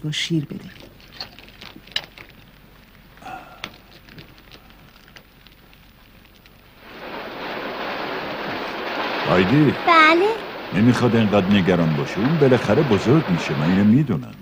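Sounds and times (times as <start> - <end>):
speech: 0.0 - 0.8, 9.3 - 14.4
rain pattering: 0.0 - 14.4.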